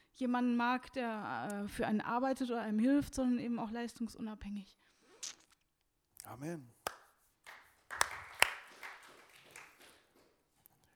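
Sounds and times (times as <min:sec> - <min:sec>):
speech: 0:00.2 - 0:05.4, 0:06.3 - 0:06.8
small group clapping after a speaker finishes: 0:06.3 - 0:10.5.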